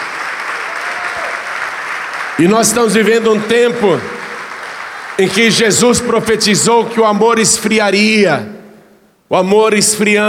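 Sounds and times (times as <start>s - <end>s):
audience applauding with dense clapping: 0.0s - 6.2s
speech: 2.4s - 4.2s, 5.2s - 8.6s, 9.3s - 10.2s.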